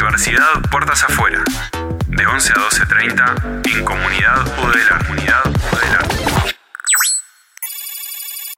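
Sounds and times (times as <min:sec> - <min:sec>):
speech: 0:00.2 - 0:06.1
bright warbling phone ring tone for an incoming call: 0:06.8 - 0:08.5
phone ringtone electronic chirps: 0:06.8 - 0:08.5.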